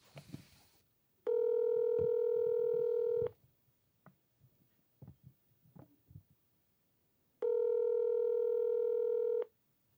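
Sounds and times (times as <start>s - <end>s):
telephone line tones while a call is being placed: 1.3s - 3.3s, 7.4s - 9.5s.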